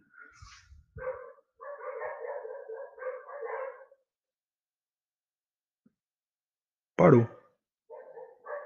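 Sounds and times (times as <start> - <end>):
dog barking: 1.0 - 4.1, 7.9 - 8.6
speech: 7.0 - 7.4.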